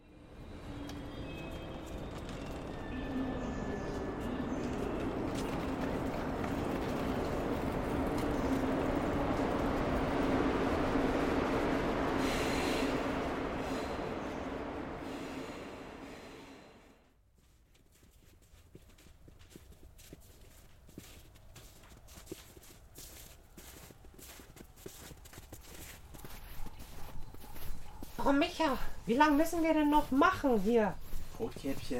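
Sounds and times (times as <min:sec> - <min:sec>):
train rumbling along the rails: 0:00.0 - 0:17.1, 0:21.8 - 0:31.9
faint train wheel squeals: 0:00.5 - 0:09.0
speech: 0:28.3 - 0:31.9.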